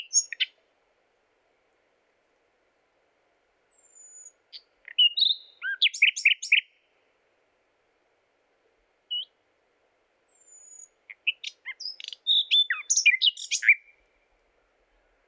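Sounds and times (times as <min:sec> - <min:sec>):
common nightingale Luscinia megarhynchos song: 0:00.0 - 0:00.7, 0:03.6 - 0:07.0, 0:09.1 - 0:09.4, 0:10.2 - 0:15.2.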